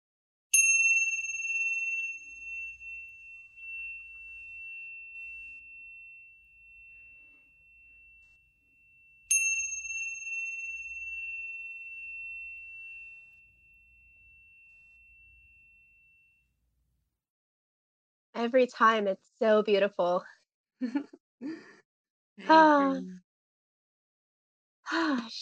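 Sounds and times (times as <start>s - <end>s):
meditation bell ringing: 0.5s - 16.5s
speech: 18.4s - 21.7s, 22.4s - 23.2s, 24.9s - 25.4s.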